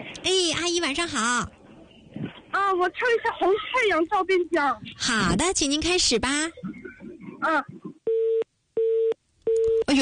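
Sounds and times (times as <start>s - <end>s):
speech: 0.2s - 1.6s, 2.6s - 6.7s, 7.4s - 7.8s
telephone busy tone after caller hung up on a call-in line: 8.0s - 9.9s.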